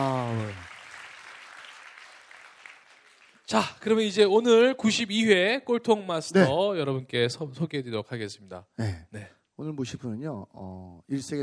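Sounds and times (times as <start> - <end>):
crowd applauding: 0.0 - 3.7
speech: 3.5 - 11.4.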